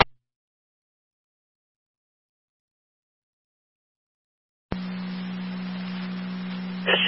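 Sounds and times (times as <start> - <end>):
hissy radio static: 4.7 - 7.0
fire dispatch alert tone for a fire base: 6.8 - 7.0.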